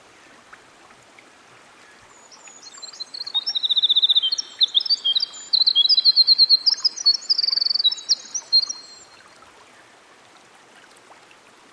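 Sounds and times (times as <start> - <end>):
winter wren singing by a stream: 1.8 - 9.3.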